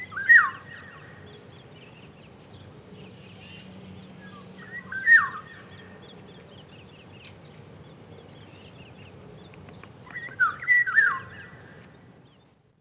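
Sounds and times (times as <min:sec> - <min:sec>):
faint high chirps from other birds: 0:00.0 - 0:12.6
Eurasian golden oriole fluty whistled song in spring: 0:04.6 - 0:05.4, 0:10.1 - 0:11.3.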